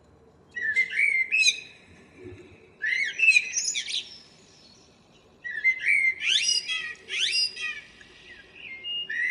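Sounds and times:
faint low background hiss: 0.0 - 9.3
common blackbird Turdus merula song with rising whistled sweeps: 0.5 - 1.9, 2.8 - 9.3.

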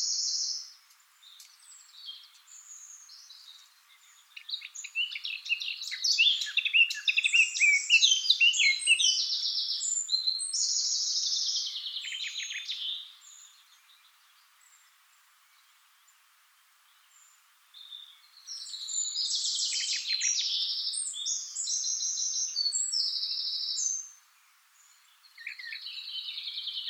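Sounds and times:
Eurasian blackcap Sylvia atricapilla warbling song with buzzy trills: 0.0 - 26.8.

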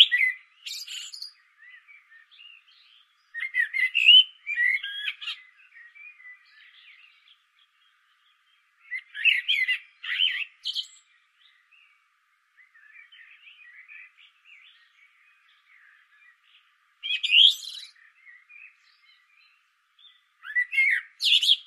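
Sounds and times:
common blackbird Turdus merula singing: 0.0 - 21.6.

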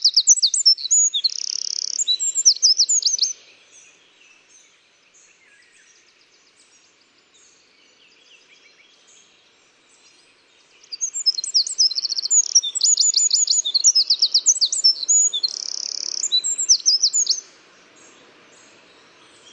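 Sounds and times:
Eurasian wren Troglodytes troglodytes singing ringing trills and sharp chips: 0.0 - 3.4, 10.8 - 19.5.

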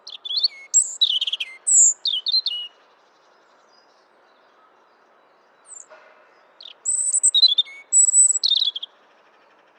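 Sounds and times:
European robin Erithacus rubecula singing: 0.1 - 2.7, 6.6 - 8.9.

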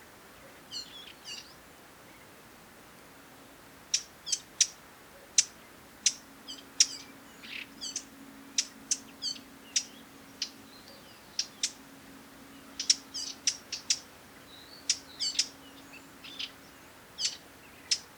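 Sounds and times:
Eurasian Blackcap Sylvia atricapilla giving hard clicking tac calls: 3.9 - 18.1.

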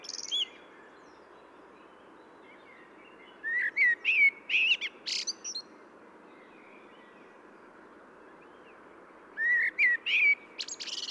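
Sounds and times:
Common blackbird Turdus merula song of mellow fluty notes and high squeaky twitters: 0.0 - 11.0
soft steady hiss: 0.0 - 11.0.

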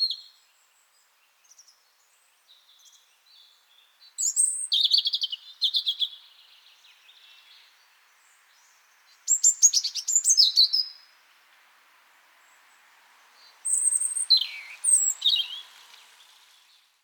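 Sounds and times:
European robin Erithacus rubecula singing: 0.0 - 11.5, 12.2 - 17.0
faint background hiss: 0.0 - 17.0.

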